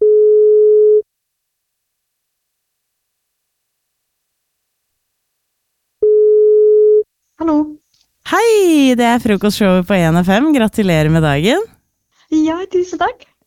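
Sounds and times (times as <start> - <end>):
telephone ringback tone of an outgoing call: 0.0 - 1.0, 6.0 - 7.0
speech: 8.7 - 11.7, 12.3 - 13.3.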